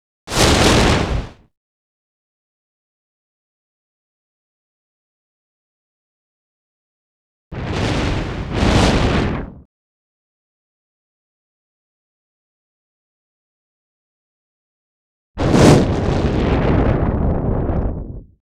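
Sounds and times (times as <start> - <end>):
fire fireball: 0.3 - 1.4, 7.6 - 9.6, 15.4 - 18.3.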